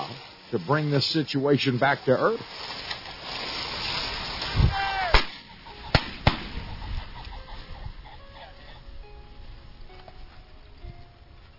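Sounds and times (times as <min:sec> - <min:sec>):
pheasant roosters cackling: 0:00.0 - 0:11.5
steady rustling outdoor background: 0:00.0 - 0:11.5
speech: 0:00.5 - 0:03.4
sharp loud cracks: 0:03.8 - 0:06.8.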